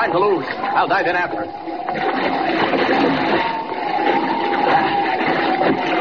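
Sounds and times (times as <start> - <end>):
speech: 0.0 - 3.6
large ocean wave crashing over a small half-swamped rowboat at sea at night: 1.7 - 5.9.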